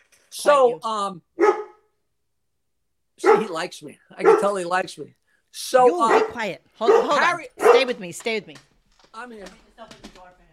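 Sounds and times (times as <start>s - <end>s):
speech: 0.4s - 1.5s, 3.2s - 10.0s
dog barking loudly: 1.4s - 1.9s, 3.2s - 4.8s, 5.8s - 8.0s.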